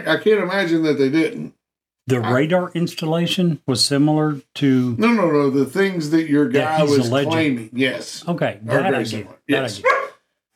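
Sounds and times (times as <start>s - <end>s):
speech: 0.0s - 10.1s
dogs barking: 9.8s - 10.2s.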